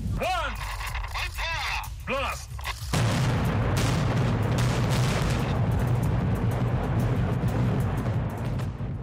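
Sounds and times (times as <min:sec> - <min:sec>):
person speaking: 0:00.2 - 0:02.7
heavy continuous roaring rumble of debris: 0:02.9 - 0:09.0
demolition blast of nuclear test site tunnels and buildings: 0:03.0 - 0:09.0.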